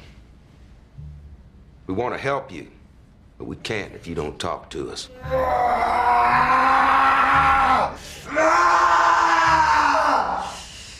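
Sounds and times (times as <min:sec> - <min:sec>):
speech: 0:01.9 - 0:02.8, 0:03.4 - 0:06.8
man screaming loudly and hoarsely: 0:05.1 - 0:10.6.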